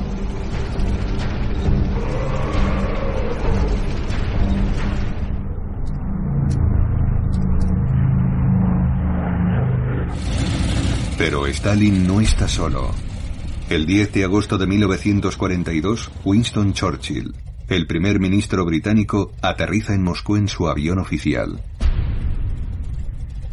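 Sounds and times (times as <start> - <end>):
German tank engines rumbling and revving: 0.0 - 23.5
speech: 11.3 - 13.1, 13.7 - 21.8.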